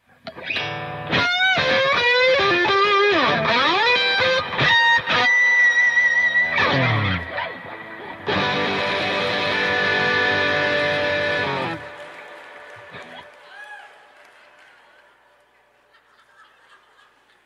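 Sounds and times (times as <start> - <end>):
electric guitar played with heavy distortion and effects: 0.2 - 13.2
laughter: 14.4 - 17.4.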